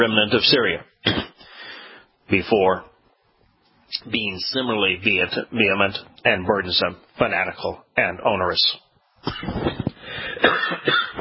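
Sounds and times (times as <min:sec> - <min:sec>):
speech: 0:00.0 - 0:01.5, 0:02.3 - 0:02.9, 0:03.9 - 0:09.7, 0:10.4 - 0:11.0
person coughing to clear a frog in the throat: 0:01.0 - 0:01.4, 0:09.2 - 0:11.1.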